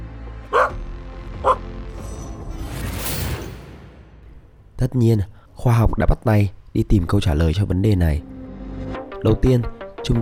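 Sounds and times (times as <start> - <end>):
dog barking: 0.5 - 0.7
soft rushing whoosh: 2.8 - 4.9
speech: 4.8 - 10.2.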